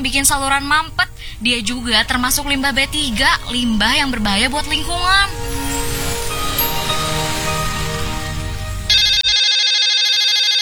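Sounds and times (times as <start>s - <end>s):
dense sound: 0.0s - 9.4s
speech: 0.1s - 5.6s
electronic phone ringtone: 8.9s - 10.6s.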